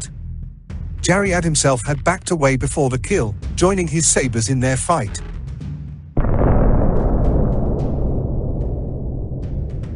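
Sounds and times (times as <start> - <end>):
speech: 1.0 - 5.3
deep heavy rumble: 6.2 - 9.9
muffled explosion: 6.2 - 9.9.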